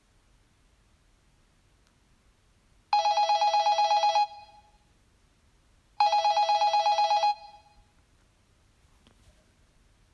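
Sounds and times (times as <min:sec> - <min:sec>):
landline telephone bell ringing: 0:03.0 - 0:04.7, 0:06.0 - 0:07.8.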